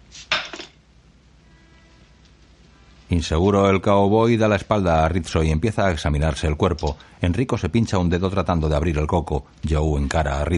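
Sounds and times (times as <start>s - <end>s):
ceramic plate tossed onto a table: 0.3s - 0.8s
speech: 3.1s - 10.5s.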